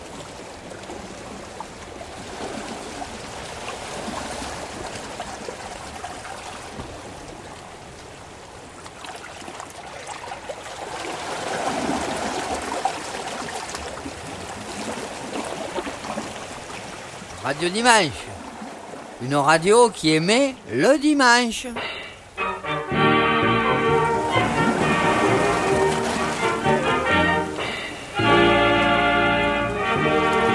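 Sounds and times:
sea waves: 0.0s - 30.5s
steady breezy wind hiss: 16.1s - 30.5s
speech: 17.5s - 18.3s, 19.2s - 22.0s.

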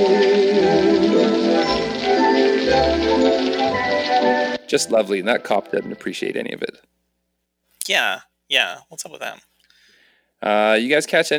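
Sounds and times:
rain pattering on a hard surface: 0.0s - 5.2s
speech: 4.7s - 6.9s, 7.8s - 9.5s, 10.4s - 11.3s.

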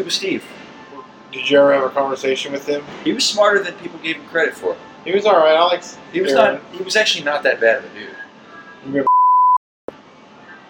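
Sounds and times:
speech: 0.0s - 0.6s, 1.3s - 8.2s, 8.8s - 9.1s
censor beep over a name: 9.0s - 9.6s.

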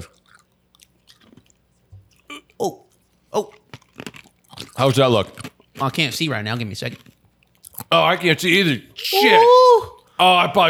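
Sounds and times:
crunching of meth in the mouth: 0.0s - 7.9s
soft wet chewing and mouth noises: 0.0s - 8.0s
speech: 2.6s - 3.6s, 4.8s - 7.1s, 7.9s - 10.6s.

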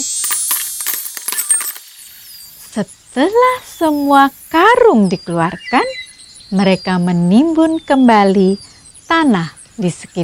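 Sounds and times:
gold coins clinking and jingling: 0.0s - 2.6s
speech: 2.8s - 10.2s.

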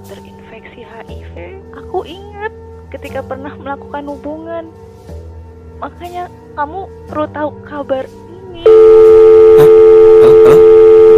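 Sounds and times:
speech: 0.0s - 5.2s, 5.8s - 9.1s
steady telephone tone after a call is cut off: 8.7s - 11.1s.

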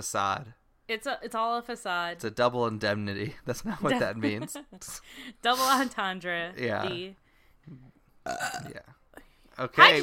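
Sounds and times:
speech: 0.0s - 9.0s, 9.6s - 10.0s
soft low guttural gulp: 7.7s - 8.8s
loud involuntary burp: 8.2s - 8.9s.

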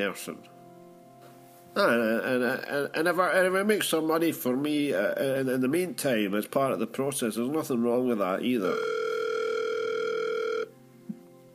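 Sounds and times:
speech: 0.0s - 0.6s, 1.8s - 9.0s
telephone ringing with a buzzy electronic tone: 8.6s - 10.7s.

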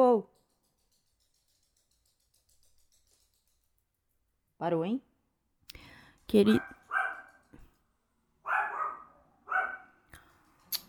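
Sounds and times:
speech: 4.6s - 5.1s, 6.3s - 6.8s
dog barking: 6.6s - 7.4s, 8.4s - 10.0s.

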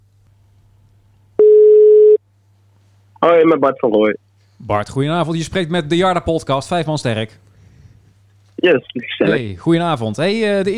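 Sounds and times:
phone ringback tone while a call is being placed: 1.4s - 2.2s
speech: 3.2s - 7.4s, 8.6s - 10.7s.

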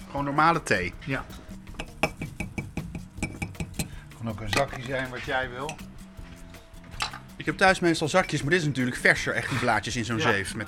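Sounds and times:
speech: 0.1s - 1.4s, 4.2s - 5.9s, 7.4s - 10.6s
spoon clinking against a tea glass: 1.8s - 4.9s, 5.6s - 5.9s.

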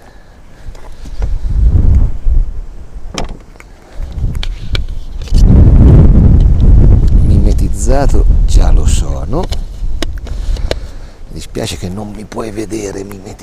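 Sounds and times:
gusts of wind buffeting the microphone outdoors: 0.6s - 12.3s
speech: 7.9s - 9.6s, 11.4s - 13.4s.

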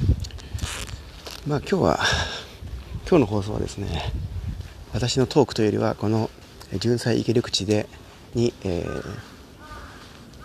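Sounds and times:
outdoor noise: 0.0s - 10.4s
speech: 1.5s - 2.3s, 3.1s - 4.3s, 4.9s - 9.3s
large-billed crow cawing: 8.7s - 10.4s.

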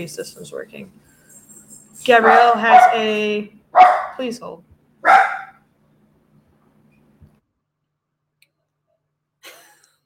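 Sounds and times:
speech: 0.0s - 1.2s, 2.0s - 4.7s
dog barking: 2.1s - 3.2s, 3.8s - 4.2s, 5.0s - 5.6s.

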